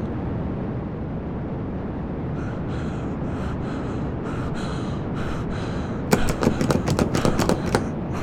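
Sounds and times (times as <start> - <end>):
constant rushing noise: 0.0 - 8.2
heavy panting breaths: 2.5 - 8.2.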